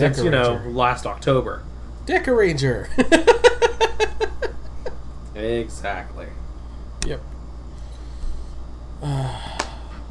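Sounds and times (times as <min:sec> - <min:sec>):
speech: 0:00.0 - 0:03.8, 0:05.4 - 0:06.4, 0:07.0 - 0:07.3, 0:09.0 - 0:09.6
laughter: 0:02.9 - 0:05.0
person yawning with a voiced tone: 0:09.0 - 0:10.0.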